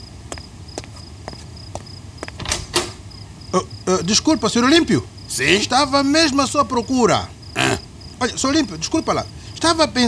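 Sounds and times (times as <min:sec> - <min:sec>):
footsteps: 0:00.0 - 0:03.0
crickets chirping: 0:00.0 - 0:10.0
door unlatched and pulled open with a clattering creak: 0:02.4 - 0:03.1
speech: 0:03.5 - 0:10.0.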